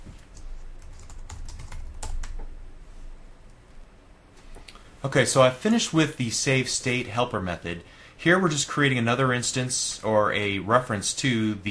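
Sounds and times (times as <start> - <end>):
typing code on a computer keyboard: 0.3 - 2.5
speech: 5.0 - 11.6.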